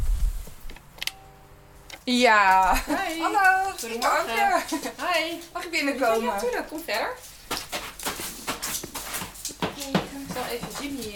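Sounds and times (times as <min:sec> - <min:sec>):
speech: 0:02.1 - 0:07.3, 0:10.4 - 0:11.1
excited dog scuffling and snuffling while greeting visitors: 0:02.8 - 0:11.1.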